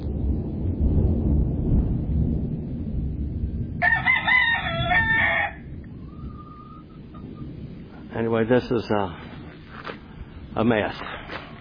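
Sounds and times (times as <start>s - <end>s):
steady low rumble: 0.0s - 11.5s
rooster crowing: 3.8s - 6.9s
speech: 8.4s - 9.2s, 10.6s - 11.2s.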